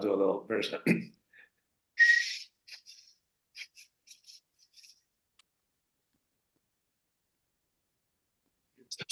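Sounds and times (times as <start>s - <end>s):
speech: 0.0s - 1.2s
person whistling a short breathy tune: 2.0s - 2.5s.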